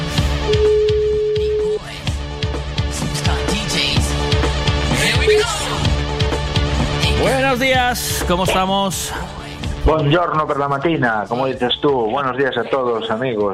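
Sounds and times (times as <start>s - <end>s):
rhythmic sound: 0.0s - 13.5s
ringing tone of an outgoing telephone call: 0.4s - 1.8s
speech: 7.6s - 13.5s.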